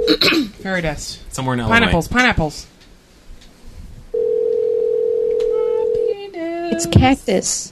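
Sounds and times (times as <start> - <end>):
speech: 0.1 - 2.7, 6.7 - 7.7
telephone dial tone: 4.2 - 6.2.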